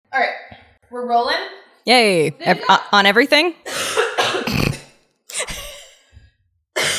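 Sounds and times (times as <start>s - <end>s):
speech: 0.2s - 3.8s
person coughing in harsh bursts: 3.7s - 5.8s, 6.8s - 6.9s.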